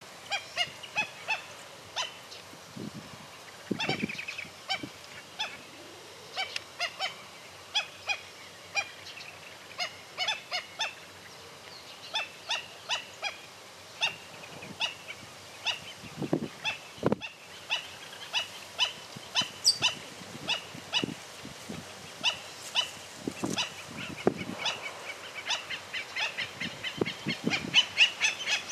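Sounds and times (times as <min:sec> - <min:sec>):
tero bird calling: 0:00.2 - 0:02.4, 0:03.4 - 0:21.2, 0:22.1 - 0:28.7.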